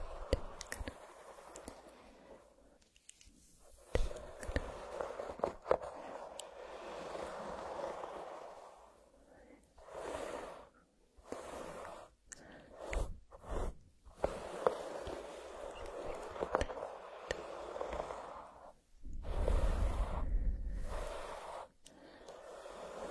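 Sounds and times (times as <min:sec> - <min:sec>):
brush strokes: 0:00.0 - 0:23.1.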